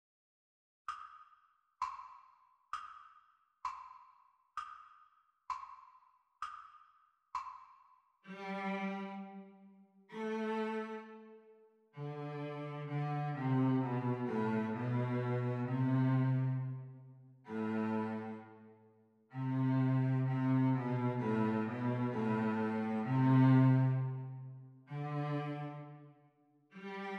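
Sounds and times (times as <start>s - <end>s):
cello duet teacher part for playalong practice: 8.3s - 11.4s, 12.0s - 18.6s, 19.4s - 26.1s, 26.8s - 27.1s.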